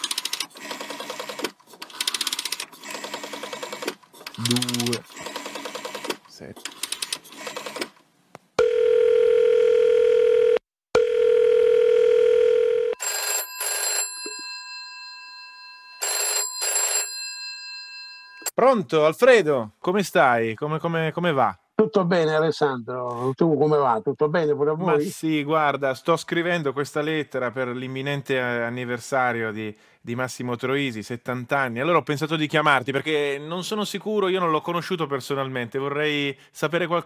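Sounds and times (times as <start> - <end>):
speech: 4.4 - 5.1, 6.4 - 6.8, 18.7 - 37.0
long steady telephone line tone: 8.6 - 14.8.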